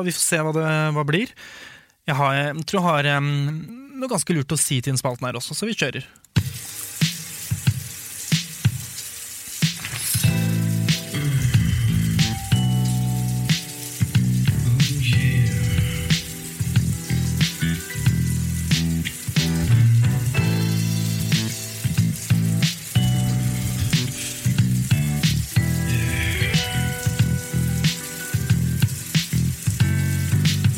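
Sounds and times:
speech: 0:00.0 - 0:06.2
shower water spraying: 0:06.4 - 0:30.7
tonal music-like sounds: 0:09.6 - 0:30.7.

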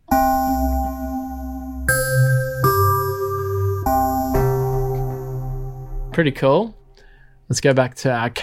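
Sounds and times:
synthesized underwater bells mallet patch tones: 0:00.0 - 0:06.2
low droning bass: 0:00.0 - 0:07.1
speech: 0:06.2 - 0:06.8, 0:07.5 - 0:08.4.

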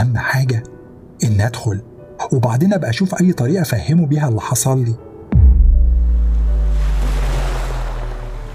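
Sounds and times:
speech: 0:00.1 - 0:05.1
ocean waves breaking on a beach: 0:05.9 - 0:08.5.

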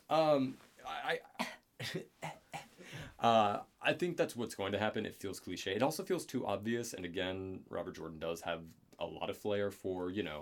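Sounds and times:
speech: 0:00.1 - 0:10.4
person coughing: 0:01.2 - 0:03.0.

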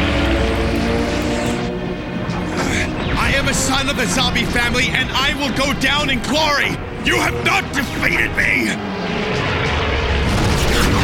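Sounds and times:
enemy aircraft approaching on a kamikaze attack: 0:00.0 - 0:11.0
speech: 0:03.8 - 0:09.3.

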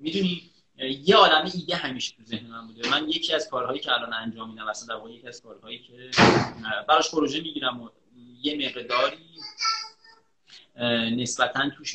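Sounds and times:
speech: 0:00.0 - 0:09.7, 0:10.8 - 0:11.9
children chattering and calling out: 0:08.8 - 0:10.2.

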